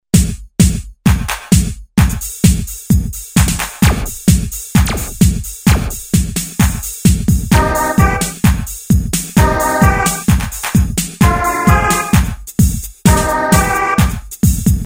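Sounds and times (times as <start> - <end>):
TR909 drum machine: 0.1 - 14.8
Korg N364 synthesizer: 4.8 - 6.0, 7.5 - 8.6, 9.4 - 10.6, 11.2 - 12.4, 13.1 - 14.3.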